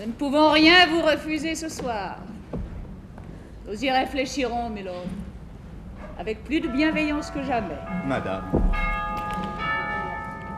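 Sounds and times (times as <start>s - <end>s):
speech: 0.0s - 2.3s, 3.7s - 5.3s, 6.2s - 9.0s
carillon bells chiming: 6.7s - 10.5s.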